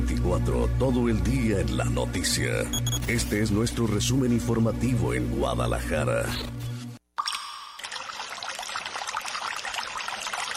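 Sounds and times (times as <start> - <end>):
speech: 0.2 - 6.7
water flowing and splashing with bubbling gurgling texture: 7.4 - 10.5.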